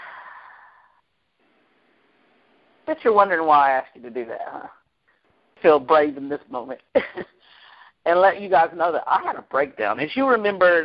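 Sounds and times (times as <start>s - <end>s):
slow deep exhale during a guided breathing exercise: 0.0s - 1.0s
speech: 2.9s - 4.8s, 5.6s - 10.8s.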